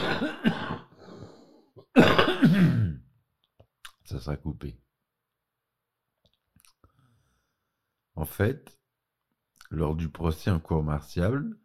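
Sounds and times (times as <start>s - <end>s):
person clearing throat with rough cough: 0.0s - 1.0s, 1.8s - 3.1s
person coughing: 0.0s - 1.2s, 1.8s - 3.1s
speech: 4.1s - 4.9s, 8.2s - 8.8s, 9.7s - 11.6s.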